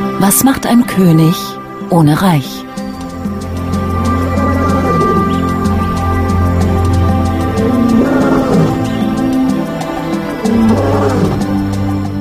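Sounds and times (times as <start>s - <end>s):
speech: 0.2s - 2.7s
lion roaring: 3.8s - 12.1s.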